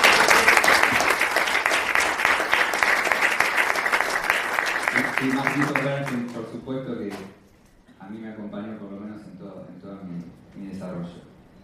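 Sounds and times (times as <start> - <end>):
audience applause in tribute to former teachers: 0.0 - 6.4
speech: 5.2 - 7.4, 8.1 - 11.2.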